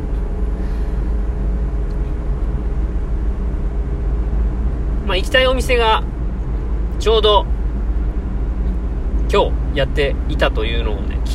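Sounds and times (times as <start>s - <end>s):
car cabin road and engine drone while driving: 0.0s - 11.3s
speech: 5.1s - 6.1s, 7.0s - 7.5s, 9.3s - 11.3s.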